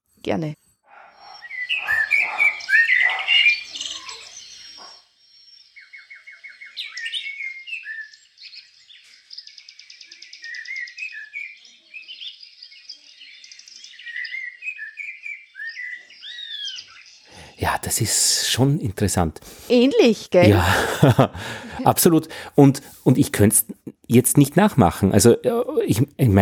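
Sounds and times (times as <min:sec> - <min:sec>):
speech: 0:00.3 - 0:00.6, 0:17.9 - 0:26.3
Eurasian blackbird singing: 0:00.9 - 0:18.7
laughter: 0:17.6 - 0:24.8.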